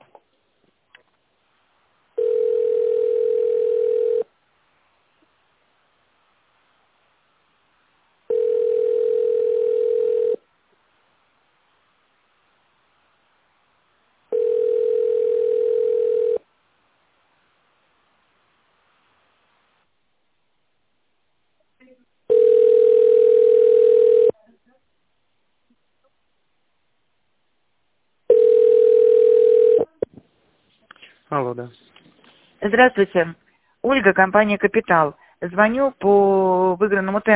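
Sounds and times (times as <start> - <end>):
telephone line tones during a call transfer: 2.2 - 4.3, 8.3 - 10.4, 14.3 - 16.4, 22.3 - 24.3, 28.3 - 29.9
speech: 31.5 - 32.0, 32.6 - 37.3.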